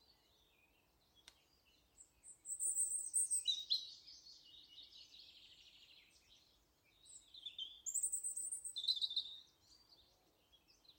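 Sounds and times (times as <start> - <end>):
European robin singing: 0.0 - 10.9.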